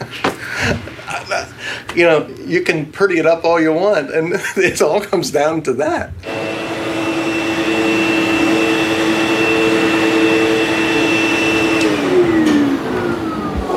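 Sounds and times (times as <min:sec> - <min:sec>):
speech: 0:01.4 - 0:06.5
vacuum cleaner running at a vacuum convention: 0:06.2 - 0:13.7.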